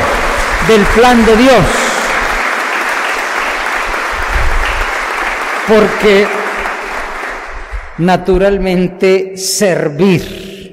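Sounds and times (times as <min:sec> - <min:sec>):
crowd applauding at a deacon's ordination ceremony: 0:00.0 - 0:08.0
speech: 0:00.7 - 0:01.8, 0:05.7 - 0:06.4, 0:08.0 - 0:10.6.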